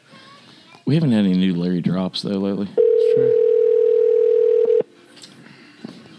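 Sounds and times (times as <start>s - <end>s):
speech: 0.9s - 3.4s
phone call ringback tone: 2.8s - 4.9s.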